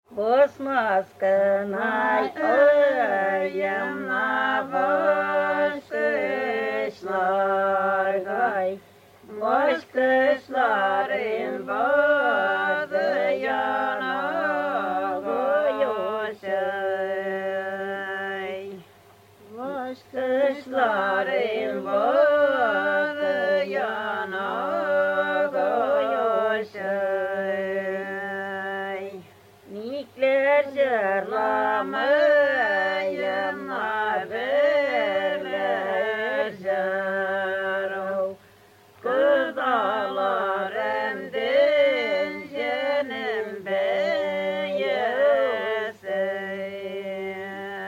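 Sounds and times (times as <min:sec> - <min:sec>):
polyphonic singing in Tatarstan: 0:00.1 - 0:47.8.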